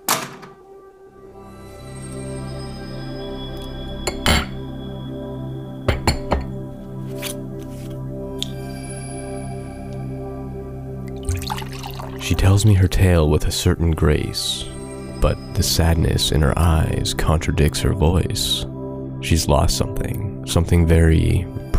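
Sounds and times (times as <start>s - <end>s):
steady humming musical background: 0.0s - 21.7s
glasses and a bottle being handled: 4.1s - 4.6s, 5.9s - 6.5s, 11.2s - 12.3s
speech: 12.4s - 21.7s.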